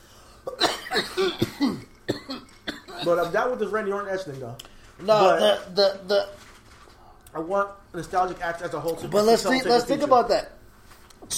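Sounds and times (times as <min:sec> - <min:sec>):
harsh coughing: 0:00.4 - 0:03.5
throat clearing: 0:00.5 - 0:03.3
speech: 0:01.0 - 0:01.5, 0:03.1 - 0:06.4, 0:07.3 - 0:10.6.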